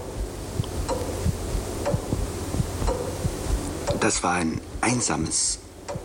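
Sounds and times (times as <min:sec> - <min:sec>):
large tower clock mechanism ticking: 0:00.0 - 0:04.3, 0:05.9 - 0:06.0
low continuous hum: 0:00.0 - 0:06.0
speech: 0:04.0 - 0:05.6.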